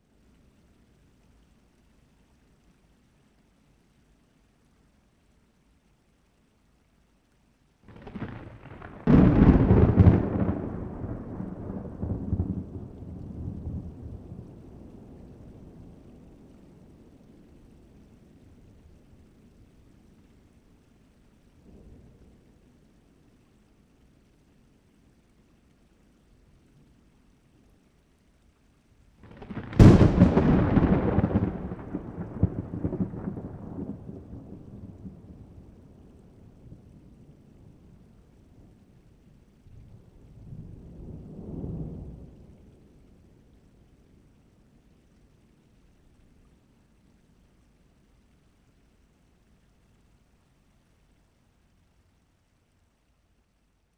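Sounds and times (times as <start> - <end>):
light rain: 0.0 - 53.9
thunder: 7.9 - 14.6, 29.2 - 35.6.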